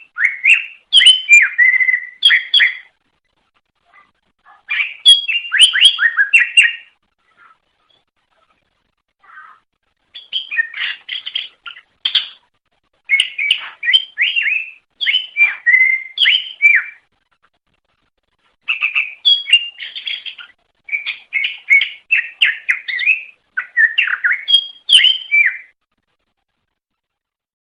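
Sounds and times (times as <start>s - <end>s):
leafbird singing: 0.0s - 2.9s, 4.7s - 7.0s, 10.2s - 12.4s, 13.1s - 17.0s, 18.7s - 25.8s.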